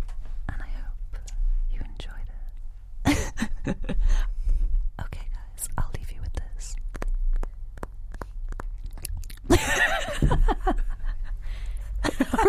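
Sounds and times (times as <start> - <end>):
breathy ASMR-style whispering against the microphone: 0.5 - 2.6, 5.0 - 6.9
laughter: 3.1 - 4.0, 9.5 - 11.4, 12.0 - 12.4
crisp mouth clicks and smacking: 5.7 - 9.5.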